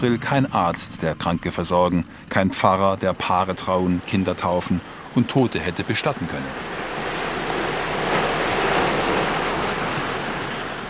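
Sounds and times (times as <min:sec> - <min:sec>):
speech: 0:00.0 - 0:06.8
ocean surf washing onto a beach: 0:02.3 - 0:10.8.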